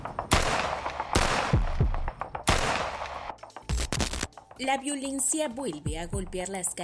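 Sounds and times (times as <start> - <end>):
rapid bursts of gunfire: 0.3 - 3.3
speech: 4.6 - 6.8.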